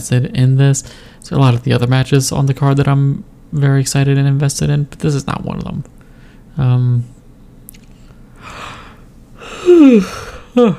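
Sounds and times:
speech: 0:00.0 - 0:06.0, 0:06.6 - 0:07.2, 0:09.7 - 0:10.7
person yawning: 0:08.4 - 0:10.7.

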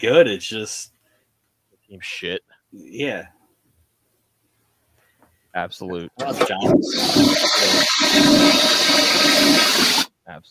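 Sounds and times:
speech: 0:00.0 - 0:00.9, 0:01.9 - 0:03.4, 0:05.5 - 0:10.4
toilet flushing: 0:06.2 - 0:10.1.

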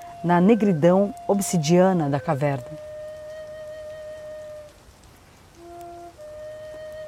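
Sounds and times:
speech: 0:00.2 - 0:02.8
water dripping from a cave ceiling into a pool: 0:02.6 - 0:07.0.

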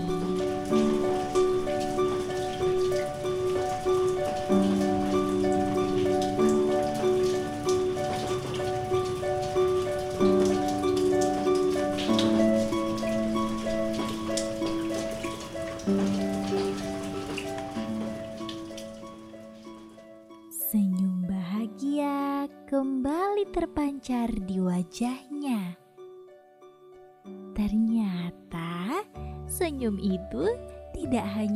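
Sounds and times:
steady rain pattering on a surface: 0:00.0 - 0:20.0
gentle sustained musical chords: 0:00.0 - 0:31.5
speech: 0:29.9 - 0:31.5.

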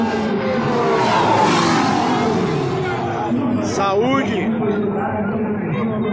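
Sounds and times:
V6 race car engine roaring past: 0:00.0 - 0:04.8
murmur of voices: 0:00.0 - 0:06.1.

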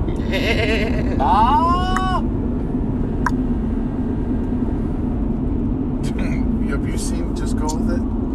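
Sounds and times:
steady hum: 0:00.0 - 0:08.3
voice imitating sheep bleats: 0:00.1 - 0:02.2
speech: 0:00.3 - 0:01.8.

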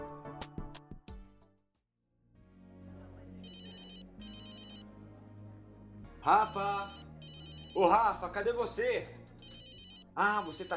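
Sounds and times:
mobile phone ringtone with bright electronic melody: 0:03.4 - 0:04.8, 0:06.6 - 0:08.0, 0:09.4 - 0:10.7
speech: 0:06.2 - 0:07.0, 0:07.8 - 0:09.2, 0:10.2 - 0:10.7.

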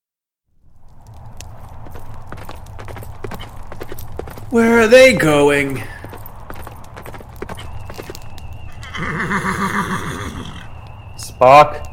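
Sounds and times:
horse hooves clip-clopping: 0:00.7 - 0:11.9
speech: 0:04.5 - 0:05.9, 0:09.1 - 0:10.5, 0:11.4 - 0:11.9
loud shrill horse whinny trailing downward: 0:08.7 - 0:10.8.

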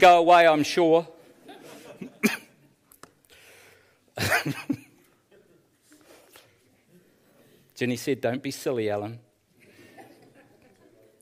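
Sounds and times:
speech: 0:00.0 - 0:01.2, 0:04.2 - 0:04.8, 0:07.8 - 0:09.2
quiet noise: 0:00.0 - 0:11.2
laughter: 0:01.4 - 0:02.6, 0:09.6 - 0:11.2
person coughing: 0:02.0 - 0:02.6.

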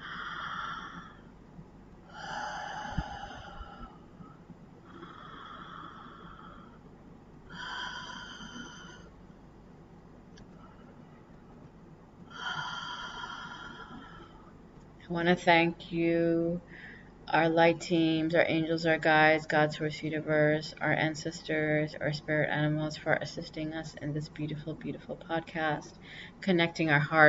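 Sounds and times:
person taking slow deep breaths at the close of a prayer: 0:00.0 - 0:01.4, 0:02.1 - 0:06.9, 0:07.5 - 0:09.2, 0:12.3 - 0:14.6, 0:16.6 - 0:17.2
speech: 0:15.1 - 0:27.2.

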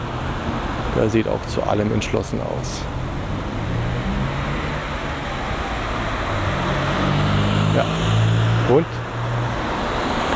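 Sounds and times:
car driving up a street in winter cold: 0:00.0 - 0:10.3
speech: 0:01.0 - 0:03.1, 0:08.7 - 0:09.0.

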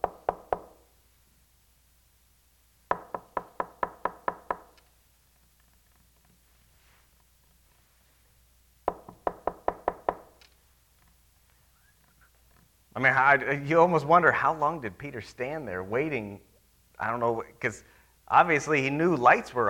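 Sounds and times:
knocking on a door: 0:00.0 - 0:00.7, 0:02.9 - 0:04.7, 0:08.9 - 0:10.3
speech: 0:13.0 - 0:19.6.

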